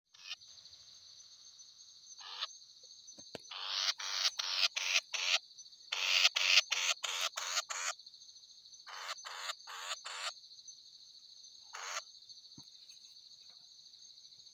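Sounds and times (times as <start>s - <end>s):
shrill insect hum: 0.1s - 14.5s
Mixed batis (Batis mixta) uttering scratchy chattering bursts: 2.2s - 2.6s, 3.4s - 7.9s, 8.9s - 10.3s, 11.7s - 12.0s.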